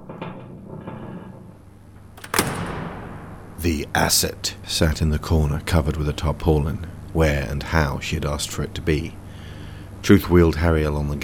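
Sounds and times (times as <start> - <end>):
heavy pressure door cranked and heaved open: 0.0 - 3.7
speech: 3.6 - 9.2, 10.0 - 11.2.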